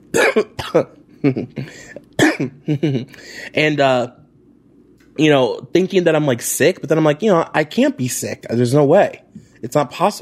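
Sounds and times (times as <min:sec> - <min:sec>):
harsh hacking coughs: 0:00.1 - 0:03.4
speech: 0:00.1 - 0:04.2, 0:05.2 - 0:10.2.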